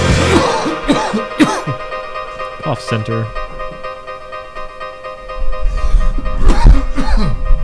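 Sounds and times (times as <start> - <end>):
harsh coughs: 0.1 - 1.9, 6.4 - 7.4
throat clearing: 0.3 - 1.8, 6.4 - 7.4
speech: 2.7 - 3.4.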